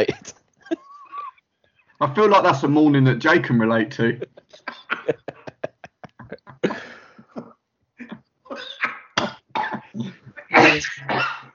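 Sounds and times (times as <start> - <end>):
speech: 0.0 - 0.8, 2.0 - 5.3
laughter: 0.0 - 1.3, 3.6 - 7.2
person coughing in a rasping fit: 4.4 - 7.5, 8.5 - 11.5.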